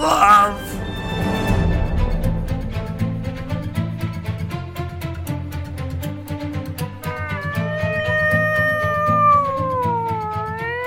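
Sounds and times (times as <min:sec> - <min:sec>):
rhythmic music: 0:00.0 - 0:10.8
cat yowling like a siren: 0:07.0 - 0:10.8.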